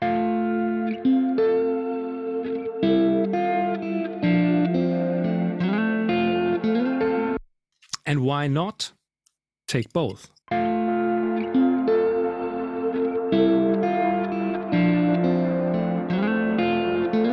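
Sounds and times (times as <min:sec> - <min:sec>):
electric guitar playing sustained chords through old delay with reverb: 0:00.0 - 0:07.4, 0:10.5 - 0:17.3
speech: 0:08.3 - 0:09.0, 0:09.7 - 0:10.8.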